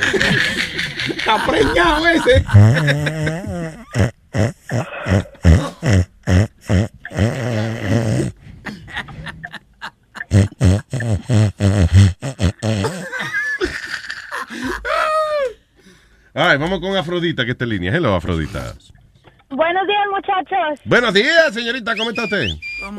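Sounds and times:
laughter: 0.0 - 4.0, 8.6 - 11.1, 12.8 - 15.5, 22.0 - 22.8
speech: 1.3 - 4.2, 16.7 - 18.9, 20.3 - 22.9
phlegmy snoring with wet gurgling grunts and snorts: 2.4 - 8.4, 10.3 - 13.2.

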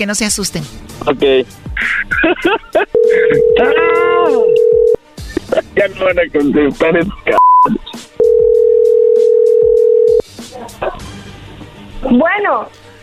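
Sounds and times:
speech: 0.0 - 8.1, 12.0 - 12.8
laughter: 1.8 - 3.9, 5.2 - 6.0
steady telephone tone as a call is placed: 3.0 - 5.0, 8.2 - 10.2.

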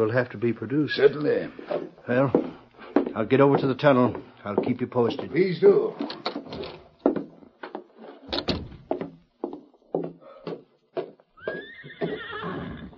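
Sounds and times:
speech: 0.0 - 2.5, 3.2 - 6.3
horse hoof clops: 0.8 - 12.9
horse whinnying: 11.4 - 12.9.

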